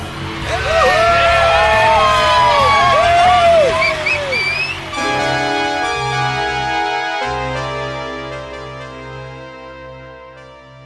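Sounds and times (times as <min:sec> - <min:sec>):
rock concert crowd cheering and yelling: 0:00.0 - 0:06.6
sustained steady musical tones: 0:00.0 - 0:10.8
band's singer shouting from the stage: 0:00.4 - 0:04.6.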